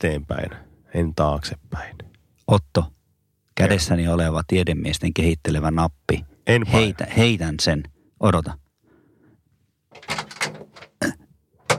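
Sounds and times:
speech: 0:00.0 - 0:03.0, 0:03.6 - 0:08.6
door opening with scraping and rattling: 0:09.9 - 0:11.0, 0:11.6 - 0:11.7.

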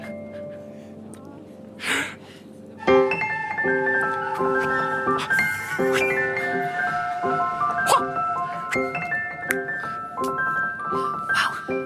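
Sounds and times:
flute playing a lilting melody: 0:02.8 - 0:11.8.

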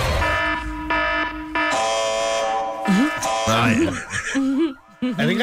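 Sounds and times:
harsh buzzing electronic alarm tones in an advert: 0:00.2 - 0:05.0
speech: 0:03.7 - 0:05.4.

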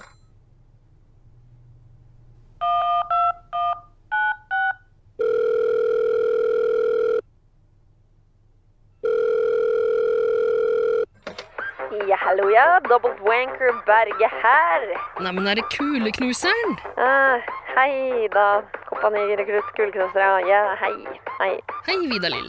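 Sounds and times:
outgoing call telephone ringing tone: 0:02.6 - 0:07.3, 0:09.0 - 0:11.1
speech: 0:12.9 - 0:22.4.

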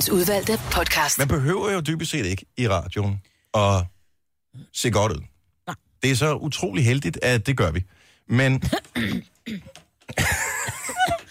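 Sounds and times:
speech: 0:00.0 - 0:03.9, 0:04.5 - 0:10.5
person coughing: 0:08.6 - 0:11.2
rough throat noise: 0:08.6 - 0:11.2.

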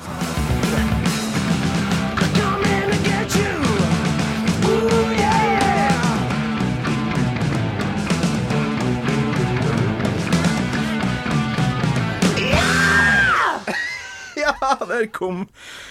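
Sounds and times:
loud dense rock song: 0:00.0 - 0:14.8
singer's long rising strained scream: 0:04.6 - 0:06.3, 0:12.3 - 0:14.0
laughter: 0:12.6 - 0:15.2
speech: 0:15.0 - 0:15.8.

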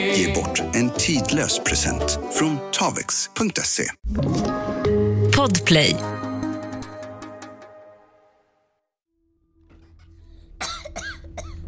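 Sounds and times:
speech: 0:00.2 - 0:04.6, 0:05.4 - 0:06.2
girl coughing violently: 0:10.6 - 0:11.6.

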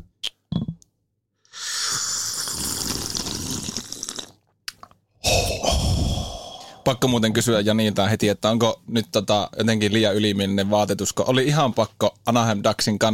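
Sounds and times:
person slurping hot coffee: 0:01.5 - 0:04.4, 0:05.2 - 0:06.8
speech: 0:06.9 - 0:13.1.

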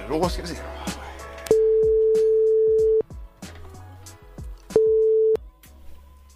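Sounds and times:
speech: 0:00.1 - 0:01.0
mid-pitched telephone ringback tone: 0:01.5 - 0:03.0, 0:04.8 - 0:05.4.

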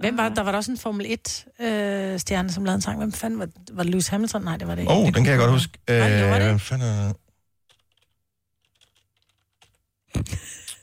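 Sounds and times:
speech: 0:00.0 - 0:07.2, 0:10.1 - 0:10.6
typing on a noisy computer keyboard: 0:07.7 - 0:09.8.

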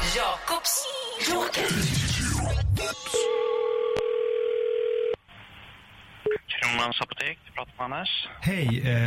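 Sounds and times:
speech: 0:00.1 - 0:03.6, 0:06.7 - 0:09.0
telephone ring tone of a prank call to a pharmacy: 0:03.2 - 0:05.2.

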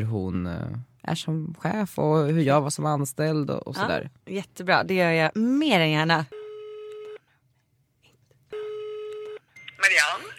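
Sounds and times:
speech: 0:00.0 - 0:06.4
electronic ringback tones on a phone line: 0:06.3 - 0:07.2, 0:08.5 - 0:10.3.

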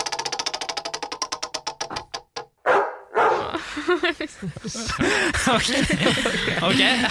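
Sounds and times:
spinning wheel clicking: 0:00.0 - 0:02.2
dog barking: 0:02.6 - 0:03.4
laughter: 0:03.4 - 0:07.0
speech: 0:03.8 - 0:07.0.

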